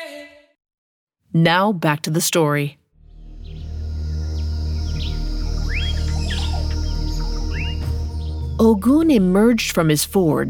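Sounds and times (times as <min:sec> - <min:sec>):
speech: 0:01.3 - 0:02.8, 0:08.6 - 0:10.4
steady low rumbling background: 0:03.0 - 0:10.4
bird on a branch twittering: 0:03.4 - 0:09.9.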